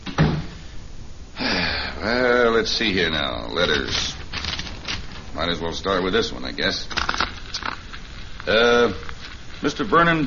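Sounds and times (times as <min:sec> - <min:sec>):
door swinging shut with a solid thump: 0:00.0 - 0:00.6
speech: 0:02.0 - 0:04.2, 0:05.4 - 0:07.1, 0:08.4 - 0:10.2.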